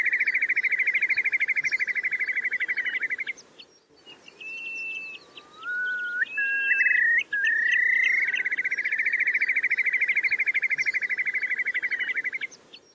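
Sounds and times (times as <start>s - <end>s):
rising whistled bird notes: 0.0s - 3.4s, 4.0s - 12.9s.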